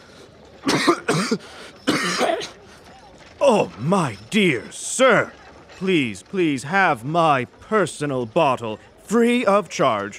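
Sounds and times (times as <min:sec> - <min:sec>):
coughing: 0:00.6 - 0:02.6
speech: 0:00.8 - 0:02.6, 0:03.4 - 0:10.1.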